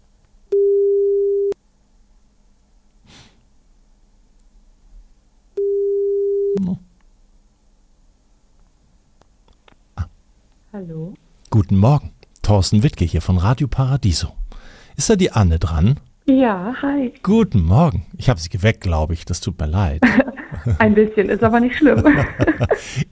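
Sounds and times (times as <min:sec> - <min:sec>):
telephone ringback tone on an outgoing call: 0:00.6 - 0:01.6, 0:05.6 - 0:06.6
speech: 0:10.8 - 0:23.0
faint breathy noises: 0:14.5 - 0:15.0
laughter: 0:20.0 - 0:23.1.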